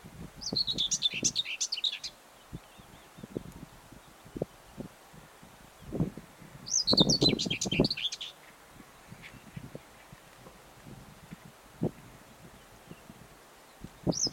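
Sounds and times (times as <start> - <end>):
Common whitethroat song: 0.4 - 2.1, 6.7 - 8.4, 9.1 - 10.1, 14.0 - 14.3.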